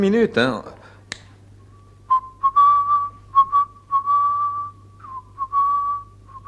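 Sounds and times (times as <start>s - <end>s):
faint steady hum: 0.0s - 6.4s
person whistling a short wandering melody: 2.1s - 6.4s.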